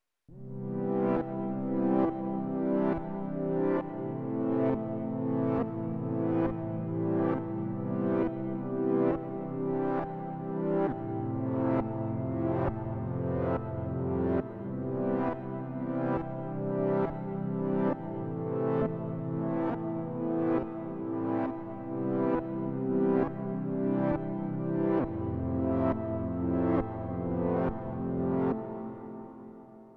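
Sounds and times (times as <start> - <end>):
ac pad: 0.3 - 29.9.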